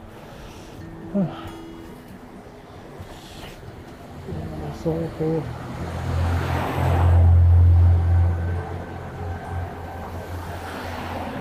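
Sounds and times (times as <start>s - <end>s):
speech: 1.2s - 1.6s, 4.8s - 6.0s
vehicle whooshing past on a street: 5.4s - 11.4s.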